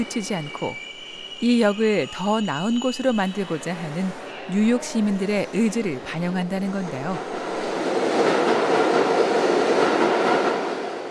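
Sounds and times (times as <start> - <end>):
speech: 0.0 - 7.4
subway train arriving at World Trade Center station in New York: 0.0 - 11.1.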